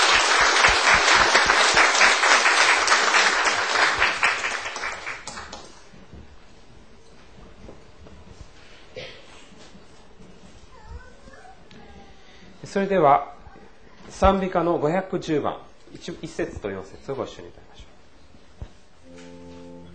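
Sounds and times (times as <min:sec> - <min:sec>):
audience applause: 0:00.0 - 0:05.8
speech: 0:12.7 - 0:13.3, 0:14.2 - 0:17.9.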